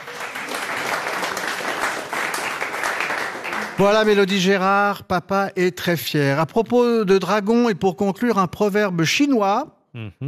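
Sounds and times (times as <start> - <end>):
crowd applauding: 0.0 - 4.5
speech: 3.8 - 10.2.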